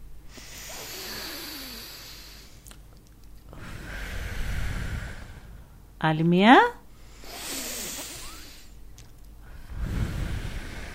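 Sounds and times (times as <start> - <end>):
deep inhale and relaxed exhale through the mouth: 0.2 - 2.6, 3.5 - 6.0, 6.9 - 8.8, 9.4 - 10.9
speech: 6.0 - 6.8.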